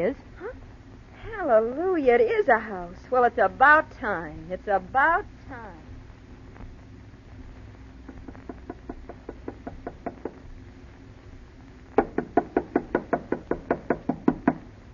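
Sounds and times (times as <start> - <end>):
speech: 0.0 - 0.3, 1.4 - 5.9
knuckles knocking on a wooden house door: 8.2 - 10.4, 12.0 - 14.7.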